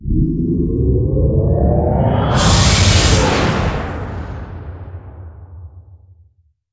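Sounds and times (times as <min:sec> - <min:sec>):
spaceship entering warp: 0:00.0 - 0:05.7.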